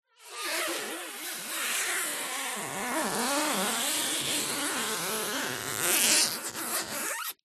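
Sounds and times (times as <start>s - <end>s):
plastic tape stretched, rubbing, creaking and squeaking: 0.4s - 7.4s.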